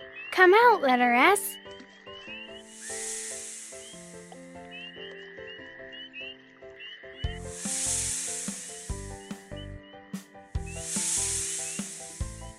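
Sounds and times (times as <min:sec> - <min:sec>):
speech: 0:00.4 - 0:01.6
snake hissing: 0:02.6 - 0:04.8, 0:07.3 - 0:09.6, 0:10.6 - 0:12.5.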